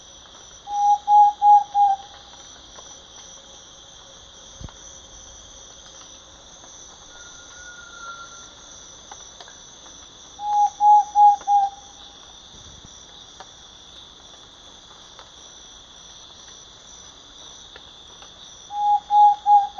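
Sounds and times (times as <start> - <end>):
faint noise: 0.0 - 19.7
high insect drone: 0.0 - 19.7
thrush-like antpitta calling with hollow whistled notes: 0.7 - 2.1, 7.1 - 8.5, 10.4 - 11.8, 18.7 - 19.7.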